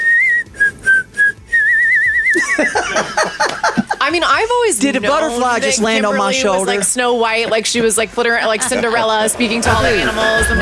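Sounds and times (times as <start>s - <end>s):
person whistling a short melody: 0.0s - 2.4s
noisy chattering sound: 2.0s - 10.6s
laughter: 2.3s - 10.6s
speech: 2.6s - 3.2s, 4.1s - 10.6s.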